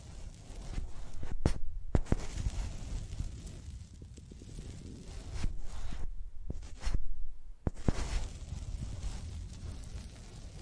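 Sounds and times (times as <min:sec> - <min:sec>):
microphones rubbed and dragged across a surface: 0:00.0 - 0:10.6.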